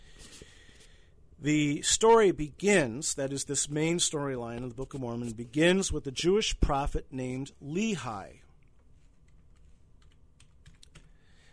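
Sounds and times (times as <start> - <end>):
speech: 1.4 - 8.4
computer keyboard typed on with one finger: 8.7 - 11.1.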